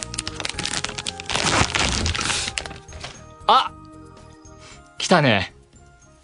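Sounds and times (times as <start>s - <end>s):
plastic wrapper of a small durian snack being torn open in a studio: 0.0s - 3.2s
speech: 3.5s - 3.8s, 5.1s - 5.5s.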